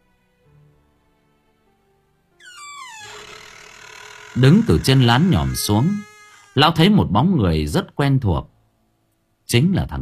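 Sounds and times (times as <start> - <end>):
window being gently pushed open: 2.4 - 7.0
speech: 4.4 - 8.5, 9.5 - 10.0.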